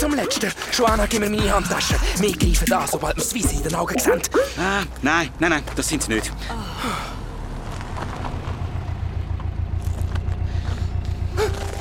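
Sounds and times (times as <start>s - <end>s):
speech: 0.0s - 7.1s
vehicle approaching and stopping with engine rumbling: 0.0s - 11.7s.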